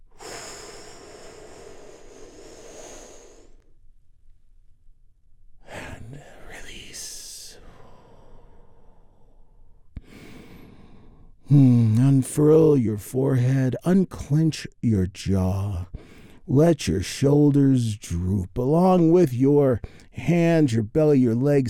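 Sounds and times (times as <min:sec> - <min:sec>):
deep slow breaths taken together during a guided relaxation: 0:00.0 - 0:03.9, 0:07.5 - 0:12.0, 0:15.8 - 0:16.5, 0:19.8 - 0:20.2
speech: 0:11.5 - 0:21.6.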